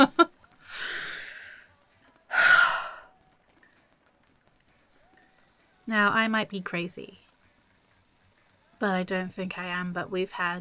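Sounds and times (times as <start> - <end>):
person breathing in deeply: 0.7 - 1.6
breathy sigh: 2.3 - 3.1
speech: 5.9 - 7.2, 8.8 - 10.5.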